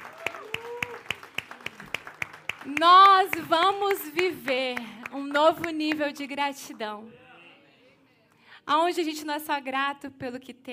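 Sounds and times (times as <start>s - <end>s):
crowd clapping in a steady even rhythm: 0.0s - 6.9s
speech: 2.6s - 7.2s, 8.7s - 10.7s.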